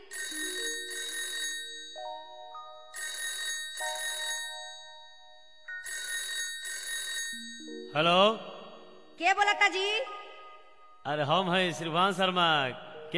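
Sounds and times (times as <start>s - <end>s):
telephone ringing on an outgoing call: 0.0s - 8.0s
speech: 7.4s - 8.5s, 9.2s - 10.2s, 11.0s - 13.1s.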